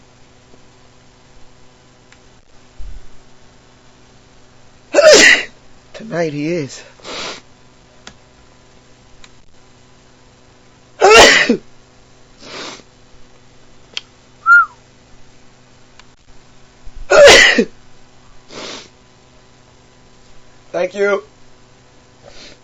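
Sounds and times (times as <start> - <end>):
person sneezing: 5.0 - 5.5, 11.0 - 11.6, 17.1 - 17.7
speech: 6.0 - 6.9, 20.9 - 21.3
brief high chirp: 14.4 - 14.8.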